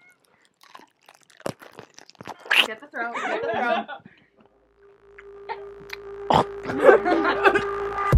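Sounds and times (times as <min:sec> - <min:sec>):
crunching into a pickle: 0:00.0 - 0:02.8
crackly chewing of a pickle: 0:00.0 - 0:03.0
speech: 0:02.7 - 0:04.1
laughter: 0:03.0 - 0:04.2, 0:06.6 - 0:08.0.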